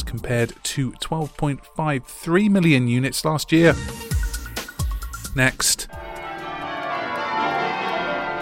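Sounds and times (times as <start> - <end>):
speech: 0.1 - 4.0, 5.3 - 6.1
church bells in Cambridge pealing: 6.0 - 8.3.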